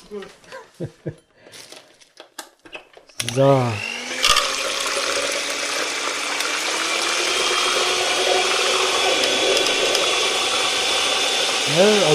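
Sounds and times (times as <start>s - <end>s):
speech: 0.1s - 1.7s, 3.2s - 3.9s, 11.7s - 12.1s
laughter: 0.5s - 1.2s
electric hand mixer whipping egg whites: 3.3s - 12.1s.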